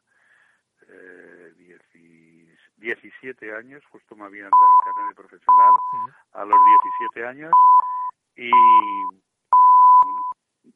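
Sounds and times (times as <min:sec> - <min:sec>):
speech: 0:02.8 - 0:07.7, 0:08.4 - 0:09.3
radio time-signal electronic pips: 0:04.6 - 0:10.4.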